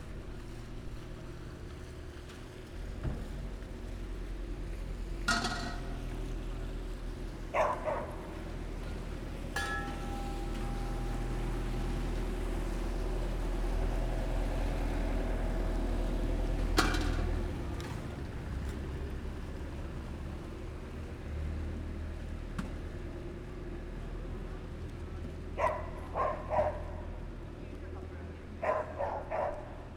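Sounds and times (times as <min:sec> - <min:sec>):
motorboat in Venice Italy: 0:00.0 - 0:29.9
people working in Venice Italy: 0:05.1 - 0:18.8
dog in Venice Italy: 0:07.5 - 0:08.3, 0:25.6 - 0:27.1, 0:28.6 - 0:29.8.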